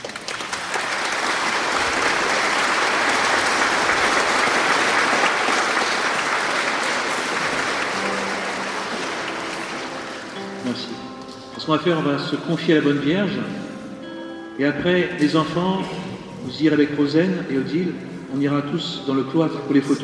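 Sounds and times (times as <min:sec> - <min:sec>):
audience applauding in a church: 0:00.0 - 0:10.8
speech: 0:11.7 - 0:13.7, 0:14.6 - 0:20.0.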